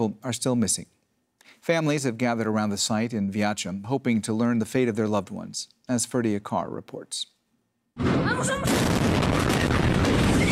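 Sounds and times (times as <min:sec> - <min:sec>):
speech: 0:00.0 - 0:07.4, 0:08.0 - 0:09.6
fireworks stockpile explosion at army base: 0:08.0 - 0:10.5
sustained roaring crackling rumble: 0:08.1 - 0:10.5.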